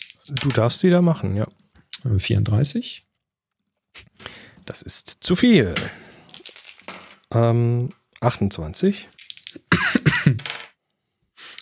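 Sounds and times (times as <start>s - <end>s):
dice clattering across a hard table: 0.0s - 0.8s, 5.8s - 7.3s, 9.1s - 10.8s
speech: 0.3s - 3.1s, 4.0s - 6.1s, 7.3s - 9.8s.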